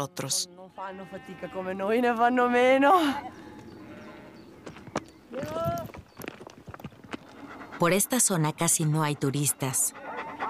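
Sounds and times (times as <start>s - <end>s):
speech: 0.0s - 3.5s, 5.3s - 6.0s, 7.8s - 10.0s
outdoor background: 0.0s - 10.4s
sheep hooves tapping and scuffing on a narrow rocky mountain path: 3.3s - 9.2s.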